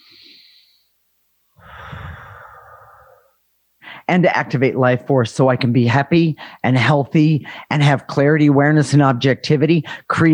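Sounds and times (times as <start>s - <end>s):
person taking a deep breath: 0.0s - 1.0s, 1.6s - 4.1s, 6.4s - 6.6s, 7.4s - 7.7s
speech: 4.1s - 10.3s.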